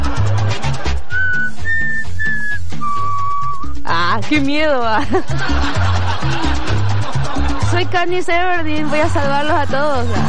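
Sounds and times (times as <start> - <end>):
laughter: 0.0 - 1.9, 4.9 - 9.8
person whistling a short four-note tune: 1.1 - 3.8
speech: 4.2 - 6.4, 7.8 - 10.2.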